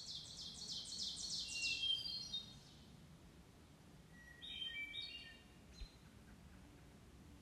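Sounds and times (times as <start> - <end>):
hermit thrush Catharus guttatus singing in Maryland: 0.0 - 3.0, 4.1 - 6.0.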